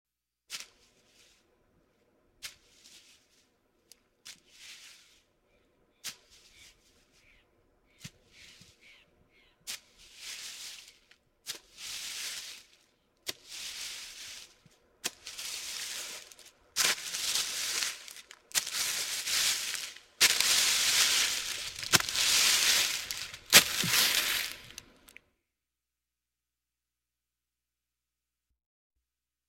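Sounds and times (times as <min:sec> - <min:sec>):
monster dragging foot: 0:16.9 - 0:25.0.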